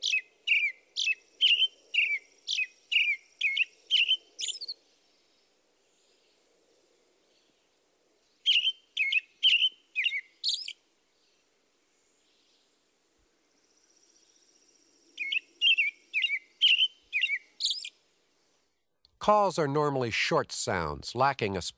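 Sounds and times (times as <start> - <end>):
American robin singing caroling phrases: 0.0 - 4.8, 8.4 - 10.8, 15.2 - 18.0
speech: 19.3 - 21.7.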